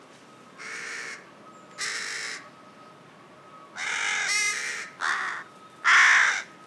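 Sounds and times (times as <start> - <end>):
Corvus corone carrion crow hoarse cawing: 0.6 - 1.2, 1.8 - 2.5, 3.8 - 6.6.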